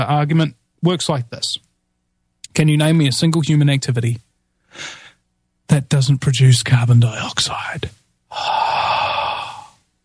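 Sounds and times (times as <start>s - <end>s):
speech: 0.0s - 1.6s, 2.5s - 5.0s, 5.7s - 8.7s
person exhaling a long airy breath: 8.3s - 9.8s.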